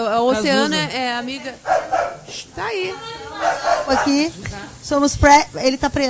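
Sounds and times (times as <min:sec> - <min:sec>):
speech: 0:00.0 - 0:06.0
dog barking in a studio: 0:01.6 - 0:04.8.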